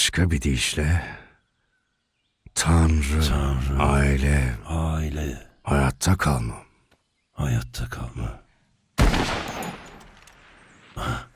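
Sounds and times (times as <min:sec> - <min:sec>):
speech: 0:00.0 - 0:01.2, 0:02.6 - 0:06.7, 0:07.4 - 0:08.4, 0:11.0 - 0:11.2
hunting rifle shot: 0:09.0 - 0:10.6.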